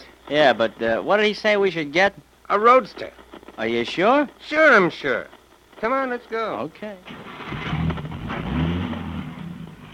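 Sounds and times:
speech: 0.3s - 7.7s
radio patrol car engine revving and pulling away: 7.1s - 9.9s.

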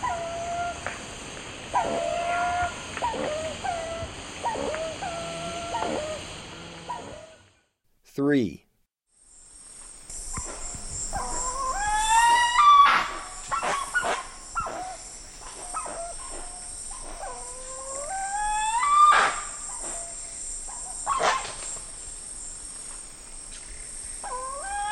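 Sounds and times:
steady insect hiss in Ecuador: 0.0s - 24.8s
Spix's guan giving yelping calls in Ecuador: 1.7s - 7.4s, 10.3s - 21.6s, 24.1s - 24.8s
speech: 8.2s - 8.6s.

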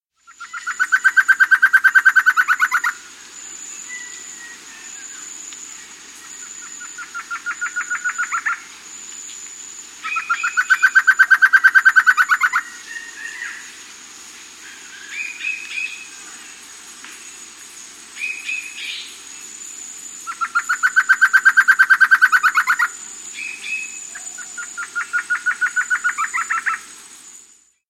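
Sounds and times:
Amazonian Antshrike calling in South America: 0.2s - 3.2s, 3.8s - 8.7s, 10.0s - 13.7s, 20.2s - 26.9s.

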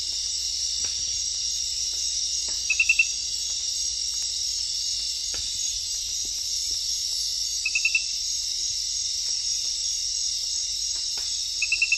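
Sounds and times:
glass frog centrolenid calling with rapid high clicks in the Ecuadorian Amazon: 2.7s - 3.2s, 7.6s - 8.1s, 11.6s - 11.9s.

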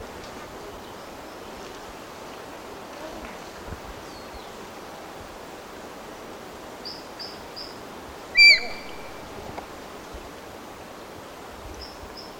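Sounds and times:
soft hiss: 0.0s - 12.3s
solitary eagle whistled call in Ecuador: 8.4s - 9.0s
faint high peeps: 8.4s - 9.1s.

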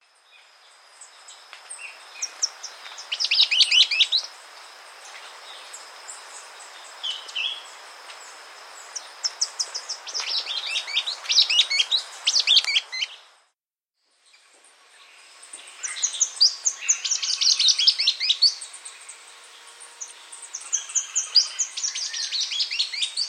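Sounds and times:
Salvadori's Antwren calling in South America: 1.8s - 4.4s, 5.5s - 13.3s, 15.0s - 23.2s.

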